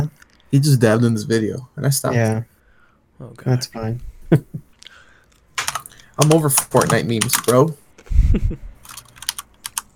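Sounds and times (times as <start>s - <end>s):
speech: 0.0s - 2.5s, 3.2s - 4.6s, 6.2s - 8.7s
computer keys struck hard in angry typing: 5.5s - 7.8s, 8.8s - 9.9s.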